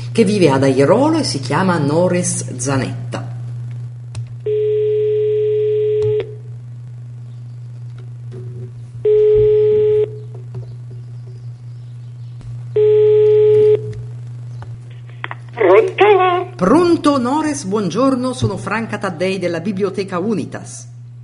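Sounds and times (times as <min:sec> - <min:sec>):
constant low hum on the phone line: 0:00.0 - 0:21.2
speech: 0:00.2 - 0:03.3, 0:17.2 - 0:20.9
electronic ringback tone of an outgoing phone call: 0:04.5 - 0:06.4, 0:09.0 - 0:10.2, 0:12.8 - 0:13.9.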